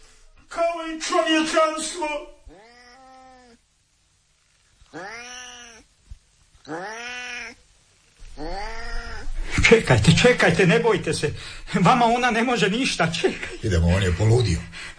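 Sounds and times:
speech: 0.9s - 2.4s, 4.9s - 5.3s, 6.6s - 7.2s, 8.4s - 8.8s, 9.7s - 14.9s
cat meowing, drawn-out and whiny: 2.5s - 3.6s, 4.9s - 5.9s, 6.6s - 7.6s, 8.2s - 9.4s.

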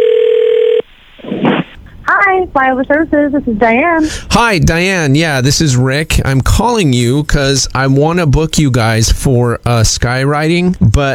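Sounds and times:
steady telephone dial tone: 0.0s - 0.8s
speech: 2.5s - 11.1s.

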